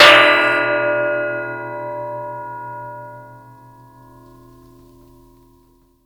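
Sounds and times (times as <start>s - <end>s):
long stick slamming a water pipe with ringout: 0.0s - 4.6s.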